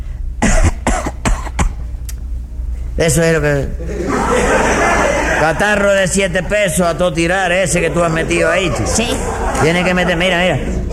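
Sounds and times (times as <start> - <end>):
man coughing hard to sound like bronchitis: 0.4 - 1.8
speech: 3.0 - 4.6, 5.4 - 10.9
laughter: 3.5 - 10.9.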